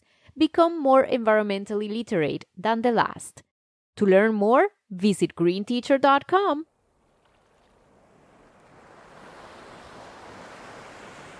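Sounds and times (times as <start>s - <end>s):
speech: 0.4s - 6.7s
waves lapping against the shore: 6.8s - 11.3s.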